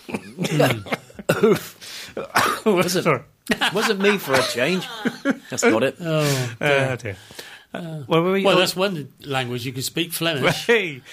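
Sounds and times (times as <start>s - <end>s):
laughter: 0.0s - 1.8s, 2.8s - 5.9s
person coughing: 0.0s - 2.8s
speech: 0.3s - 11.1s.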